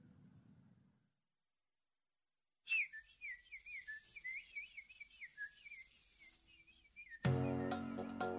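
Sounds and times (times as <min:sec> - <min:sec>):
sparrow chirping: 0:02.7 - 0:08.2.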